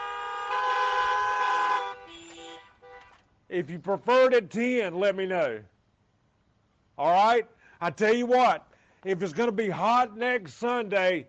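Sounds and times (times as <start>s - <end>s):
car horn honk: 0.0s - 3.2s
speech: 3.5s - 5.7s, 7.0s - 11.2s.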